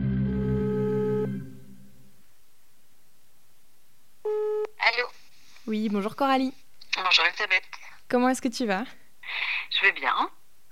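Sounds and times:
phone ringing tone during an outgoing call: 0:00.1 - 0:01.8
speech: 0:05.8 - 0:10.4.

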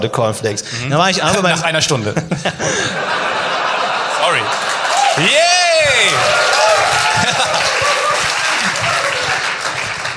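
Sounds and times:
speech: 0:00.0 - 0:03.4, 0:05.2 - 0:05.6
laughter: 0:00.8 - 0:10.1
loud dense audience applause: 0:03.1 - 0:10.1.

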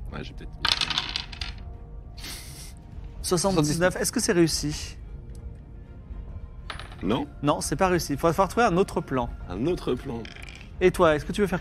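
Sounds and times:
speech: 0:00.1 - 0:01.1, 0:03.2 - 0:05.0, 0:07.0 - 0:11.5
dice rolled during a tabletop role-playing game clattering: 0:00.6 - 0:01.6, 0:06.7 - 0:07.2, 0:10.1 - 0:10.7.

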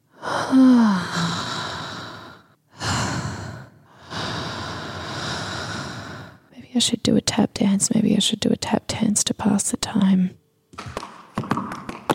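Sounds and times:
person breathing deeply to relax: 0:00.0 - 0:06.5
speech: 0:00.5 - 0:00.8, 0:06.8 - 0:11.0.

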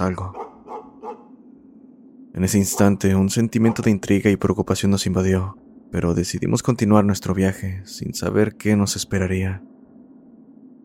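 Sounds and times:
speech: 0:00.0 - 0:00.4, 0:02.4 - 0:09.7
low steady noise: 0:00.0 - 0:10.8
dogs barking sharply: 0:00.2 - 0:01.4, 0:02.7 - 0:03.0, 0:03.6 - 0:04.0.

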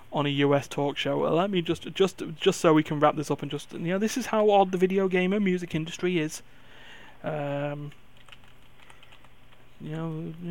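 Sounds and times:
speech: 0:00.2 - 0:06.6, 0:07.2 - 0:08.0, 0:09.8 - 0:10.4
typing on a computer keyboard: 0:07.9 - 0:09.6.

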